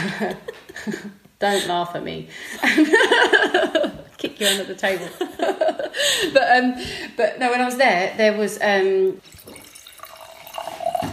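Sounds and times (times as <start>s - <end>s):
laughter: 0.0s - 1.2s, 2.6s - 6.4s
speech: 0.2s - 9.6s
wine pouring into a glass: 9.2s - 11.1s.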